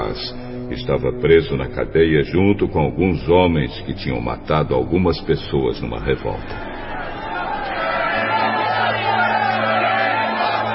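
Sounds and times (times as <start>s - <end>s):
speech: 0.1s - 6.8s
dense crowd clamoring and shouting: 6.4s - 10.7s.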